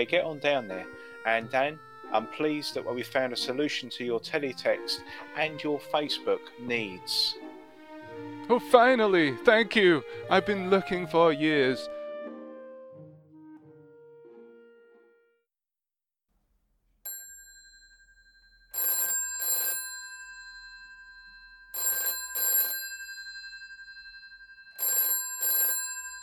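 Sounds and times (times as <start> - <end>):
speech: 0.0 - 7.4, 8.5 - 12.0
telephone ringing with an incoming call: 17.1 - 26.2.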